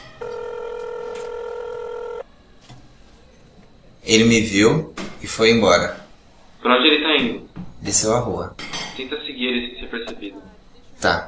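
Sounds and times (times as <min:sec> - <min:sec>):
steady electronic tone of telephone being dialed: 0:00.0 - 0:02.3
speech: 0:04.0 - 0:06.0, 0:06.6 - 0:11.2.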